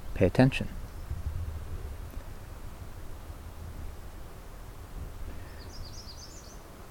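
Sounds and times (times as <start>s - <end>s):
wind: 0.0s - 6.8s
speech: 0.2s - 0.8s
faint high bird chirps: 5.3s - 6.7s.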